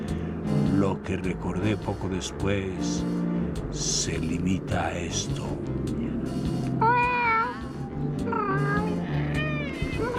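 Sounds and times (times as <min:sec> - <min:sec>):
speech: 0:00.8 - 0:07.0
old black cat meowing anxiously: 0:06.8 - 0:10.1.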